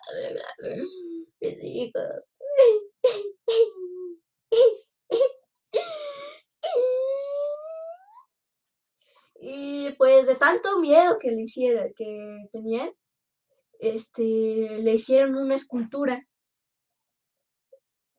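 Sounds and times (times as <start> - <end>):
speech: 0.0 - 1.1, 1.8 - 2.8, 10.2 - 13.0, 13.8 - 16.3
woman imitating the weeping woman of Xochimilco wailing for her children: 4.6 - 8.0.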